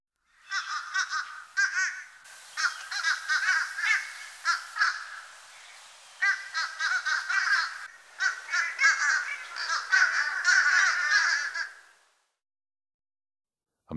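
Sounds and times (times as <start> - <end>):
fish crow cawing: 0.3 - 5.5, 6.2 - 12.0.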